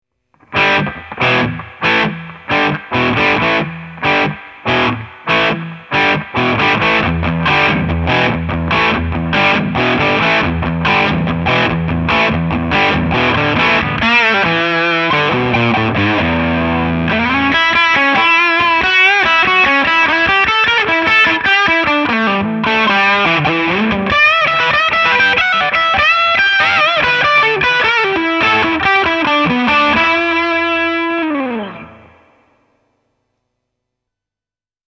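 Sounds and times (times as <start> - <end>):
blues music: 0.4 - 32.5.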